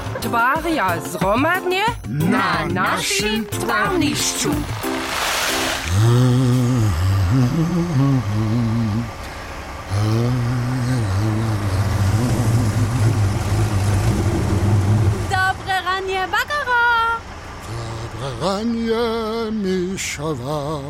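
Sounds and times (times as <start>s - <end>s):
cement mixer truck engine revving and droning: 0.0s - 20.8s
speech: 0.2s - 5.2s, 7.3s - 8.7s, 18.4s - 20.8s.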